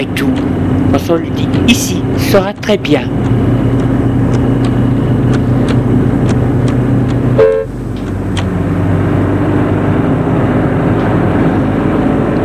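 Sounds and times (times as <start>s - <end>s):
car engine humming amid city traffic at Place de l'Étoile: 0.0s - 12.4s
city traffic at Place de l'Étoile: 0.0s - 12.4s
speech: 1.1s - 3.4s
short car horn toot: 7.4s - 7.7s.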